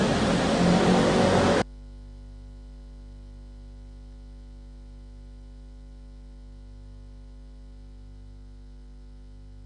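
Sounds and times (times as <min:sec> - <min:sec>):
dense roar of street traffic with engines humming: 0:00.0 - 0:01.6
vehicle revving: 0:00.0 - 0:01.6.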